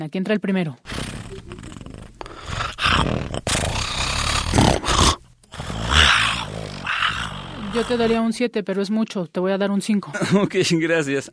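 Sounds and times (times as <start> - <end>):
speech: 0.0 - 1.0, 3.0 - 3.9, 7.8 - 11.3
person imitating lions roaring in the African savanna: 0.9 - 8.3
laughter: 10.2 - 10.8.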